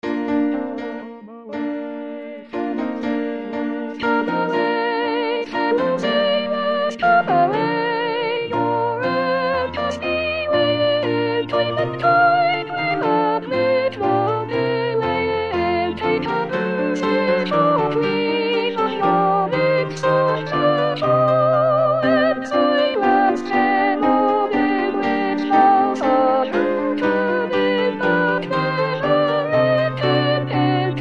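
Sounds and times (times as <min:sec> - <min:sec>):
chorus sung by sopranos: 0:01.5 - 0:31.0.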